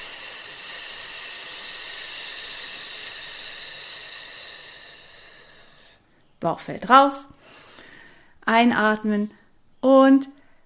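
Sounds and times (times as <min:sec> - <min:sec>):
breath pushed out through the teeth on an F sound: 0:00.0 - 0:06.1
speech: 0:06.4 - 0:07.6, 0:08.5 - 0:10.4.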